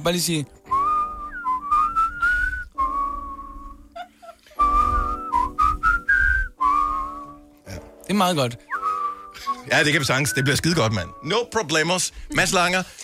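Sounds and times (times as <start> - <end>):
speech: 0.0 - 0.6, 8.1 - 8.7, 9.7 - 13.0
soft low rhythmic accompaniment: 0.0 - 13.0
person whistling a melodic tune: 0.7 - 3.9, 4.6 - 7.5, 8.7 - 11.3.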